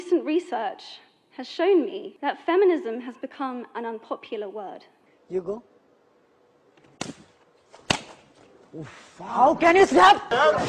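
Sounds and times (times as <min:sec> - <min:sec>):
speech: 0:00.3 - 0:05.7, 0:08.7 - 0:10.6
sharp loud slaps: 0:06.8 - 0:08.3.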